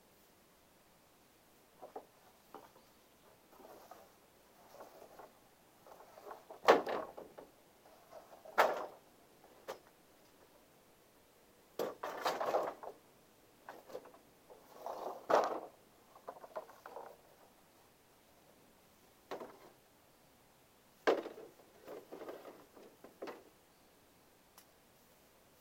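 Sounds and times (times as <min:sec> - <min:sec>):
dry wooden rice-drying poles knocking and creaking: 0:01.8 - 0:10.6, 0:11.8 - 0:13.0, 0:13.7 - 0:17.5, 0:19.3 - 0:19.8, 0:21.0 - 0:23.5.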